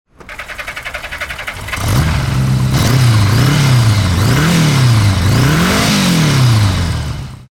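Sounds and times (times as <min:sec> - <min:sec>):
large motorcycle starting and accelerating: 0:00.2 - 0:07.5.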